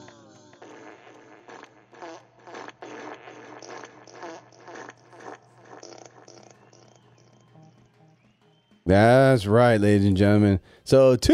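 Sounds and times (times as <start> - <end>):
raspy sputtering fart sound effects: 0.0 - 8.0
speech: 8.9 - 11.3.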